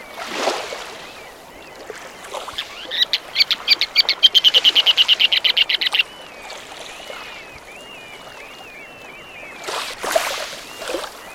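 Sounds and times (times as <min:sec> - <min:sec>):
faint thin ruddy turnstone whistle: 0:02.5 - 0:11.3.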